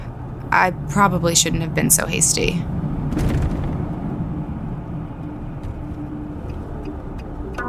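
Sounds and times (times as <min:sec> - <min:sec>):
car driving with engine and road rumble: 0:00.0 - 0:07.6
speech: 0:00.5 - 0:03.4
heavier low thump: 0:03.0 - 0:04.1.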